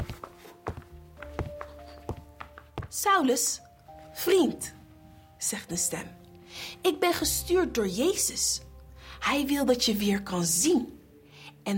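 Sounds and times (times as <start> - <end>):
footsteps approaching: 0.0 - 3.1
speech: 3.0 - 3.6, 4.2 - 4.8, 5.4 - 11.0.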